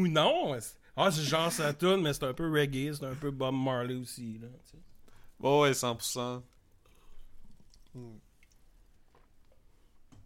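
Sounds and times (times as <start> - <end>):
speech: 0.0 - 6.5, 7.9 - 8.2
person gulping a drink: 6.7 - 10.1.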